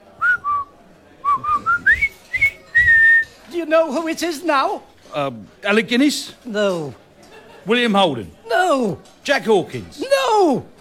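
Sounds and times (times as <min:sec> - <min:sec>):
person whistling a jaunty march melody: 0:01.3 - 0:03.3
speech: 0:03.7 - 0:07.0, 0:07.6 - 0:10.7.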